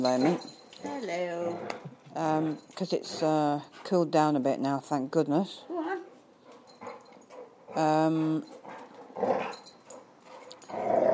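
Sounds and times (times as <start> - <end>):
speech: 0.0 - 5.8, 7.7 - 8.6, 9.2 - 9.7, 10.7 - 11.1
dogs play-fighting in a garden with rough growls and snarls: 1.3 - 2.0, 6.5 - 11.1.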